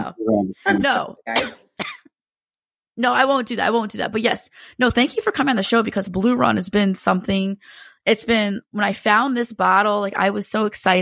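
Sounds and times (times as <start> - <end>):
speech: 0.1 - 2.0, 3.0 - 10.9
person clearing throat with a raspy cough: 0.7 - 2.0.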